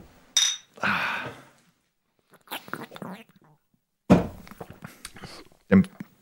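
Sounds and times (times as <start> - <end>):
beer bottles knocking and thudding as set down: 0.4 - 0.7, 4.1 - 4.7
bottles of alcohol-free wheat beer clinking in a toast: 0.4 - 0.8.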